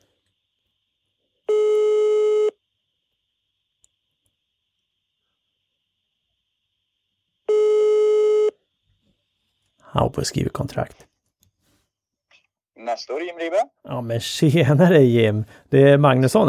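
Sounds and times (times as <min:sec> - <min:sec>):
telephone ringback tone while a call waits to be answered: 0:01.5 - 0:02.6, 0:07.5 - 0:08.6
speech: 0:10.0 - 0:11.1, 0:13.0 - 0:16.4.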